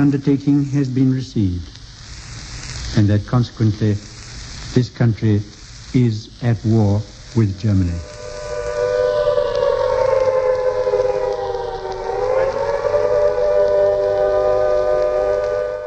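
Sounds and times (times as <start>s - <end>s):
speech: 0.0s - 1.8s, 2.9s - 4.1s, 4.7s - 8.2s
air raid warning siren wailing: 7.6s - 15.8s.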